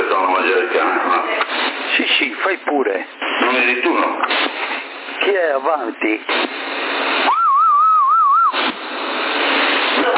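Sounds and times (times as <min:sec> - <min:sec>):
steady CB radio hiss: 0:00.0 - 0:10.1
speech: 0:02.7 - 0:04.6, 0:05.2 - 0:07.0
low wavering whistle over a CB radio channel: 0:07.3 - 0:08.6.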